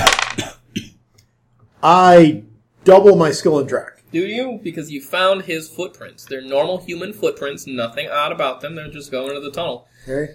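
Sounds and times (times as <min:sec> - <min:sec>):
dice rattling and clattering across a hard tabletop: 0:00.0 - 0:00.4
speech: 0:01.8 - 0:10.3.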